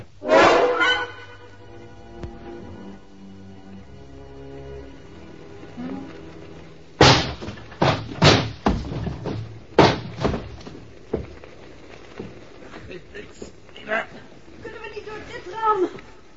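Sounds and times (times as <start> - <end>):
movement: 0.0 - 16.3
stuck locked door thumping and rattling being forced: 7.0 - 11.4
strained voices: 12.6 - 16.3.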